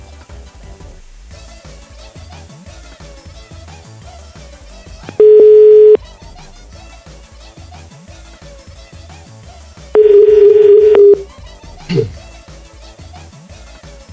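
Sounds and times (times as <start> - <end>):
telephone tone beeps while a call is being placed: 5.1 - 6.0, 10.0 - 11.2.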